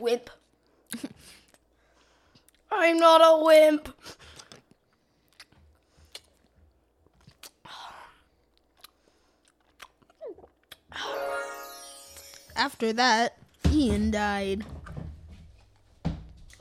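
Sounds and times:
speech: 0:00.0 - 0:01.4, 0:02.7 - 0:04.2, 0:11.0 - 0:11.8, 0:12.6 - 0:14.8
person chewing sour citrus-flavored Halloween candy: 0:04.2 - 0:11.2.

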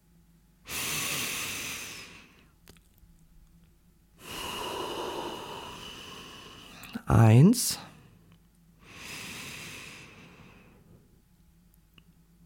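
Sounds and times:
slow deep belly breathing close to the microphone: 0:00.7 - 0:02.6, 0:04.2 - 0:07.1, 0:07.7 - 0:11.1
speech: 0:07.1 - 0:07.9.

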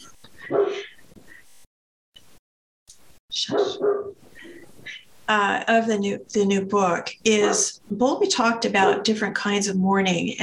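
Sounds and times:
dog barking: 0:00.4 - 0:01.0, 0:03.5 - 0:04.6, 0:07.4 - 0:07.8, 0:08.8 - 0:09.1
speech: 0:03.4 - 0:04.2, 0:05.3 - 0:10.4.

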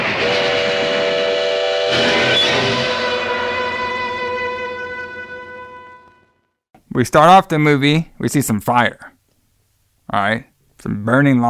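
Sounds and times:
burst of steam: 0:00.0 - 0:03.5
train whistle with a harmonic chord-like tone: 0:00.0 - 0:06.5
speech: 0:07.0 - 0:09.1, 0:10.1 - 0:11.4.

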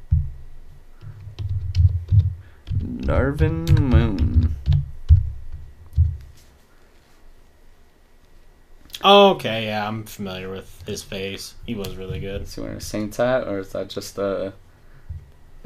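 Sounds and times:
typing on a computer keyboard: 0:01.0 - 0:05.2
speech: 0:03.1 - 0:04.3, 0:09.0 - 0:14.6.

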